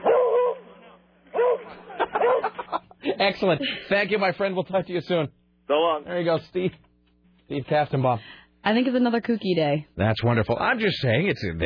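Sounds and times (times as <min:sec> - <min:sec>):
dog barking over a phone line: 0:00.0 - 0:02.7
laughter: 0:01.7 - 0:03.9
speech: 0:03.2 - 0:06.8, 0:07.5 - 0:11.6.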